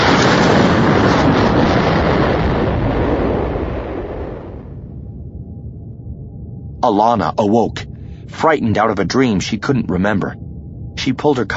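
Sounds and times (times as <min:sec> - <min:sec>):
massive thunderous blast rumbling: 0:00.0 - 0:05.4
howling wind noise: 0:00.0 - 0:11.5
speech: 0:06.8 - 0:10.4, 0:11.0 - 0:11.5.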